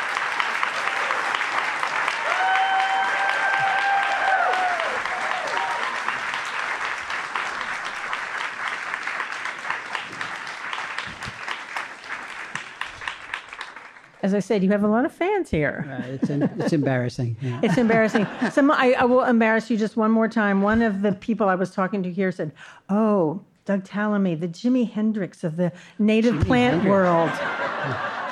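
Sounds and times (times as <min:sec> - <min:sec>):
audience applause welcoming a speaker: 0:00.0 - 0:14.2, 0:26.6 - 0:28.3
speech: 0:14.3 - 0:28.1
laughter: 0:15.8 - 0:18.9, 0:26.2 - 0:28.3.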